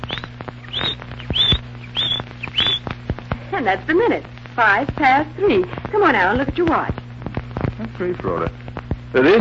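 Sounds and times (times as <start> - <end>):
canary chirping: 0.0 - 3.0
low steady hum: 0.0 - 9.3
speech: 3.6 - 7.0, 8.0 - 9.3.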